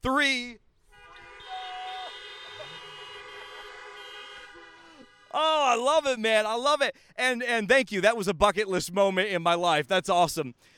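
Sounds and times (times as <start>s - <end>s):
speech: 0.0s - 0.6s, 5.3s - 10.7s
crowd of car horns honking in a parking lot: 0.8s - 6.0s
faint shouting: 1.4s - 2.9s.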